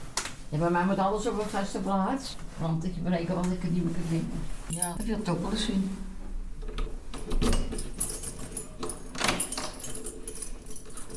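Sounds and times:
speech: 0:00.5 - 0:06.1, 0:07.3 - 0:07.9
keys jangling while a door is carefully locked: 0:04.7 - 0:05.2, 0:07.1 - 0:11.1.

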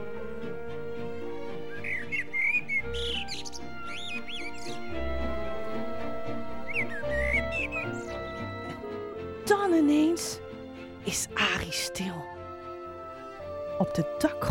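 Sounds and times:
steady music: 0:00.0 - 0:14.5
loud lively whistled chirps and trills of songs: 0:01.7 - 0:04.9, 0:06.3 - 0:08.6
speech: 0:14.0 - 0:14.5.

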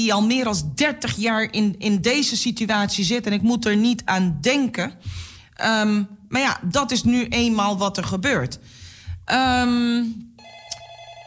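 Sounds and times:
speech: 0:00.0 - 0:10.3
telephone ringing with a loud bright harmonic tone: 0:10.4 - 0:11.2.

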